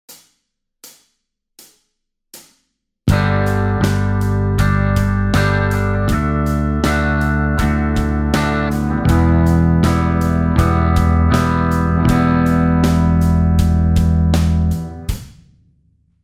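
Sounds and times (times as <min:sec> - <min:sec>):
major and minor chords: 0:03.1 - 0:15.1.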